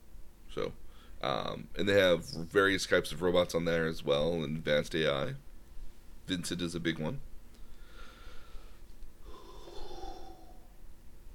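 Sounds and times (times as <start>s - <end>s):
speech: 0.5s - 5.4s, 6.3s - 7.3s
person yawning: 9.2s - 10.8s.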